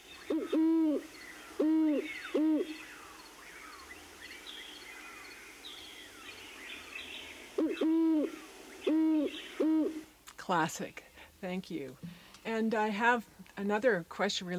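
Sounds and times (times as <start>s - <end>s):
great horned owl courtship hooting: 0.0s - 4.2s, 6.0s - 10.1s
faint songbird chirps: 0.0s - 10.0s
speech: 10.5s - 14.5s.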